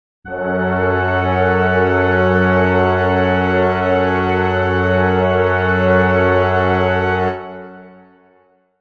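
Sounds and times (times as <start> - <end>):
brass chord in F sharp minor: 0.3 - 8.6.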